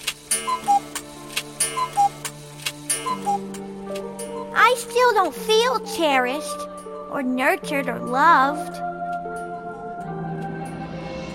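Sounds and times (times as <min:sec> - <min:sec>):
clock chiming a two-note figure: 0:00.0 - 0:06.2
speech: 0:04.7 - 0:08.8.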